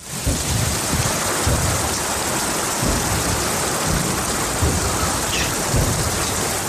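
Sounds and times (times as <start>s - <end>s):
short sporadic low booms from a lake during a rainstorm: 0.0s - 6.6s
steady heavy rainstorm downpour: 0.0s - 6.6s.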